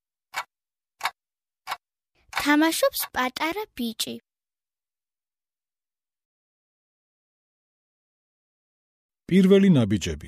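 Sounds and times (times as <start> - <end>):
clock ticking: 0.3 - 3.8
speech: 2.4 - 4.3, 9.3 - 10.2.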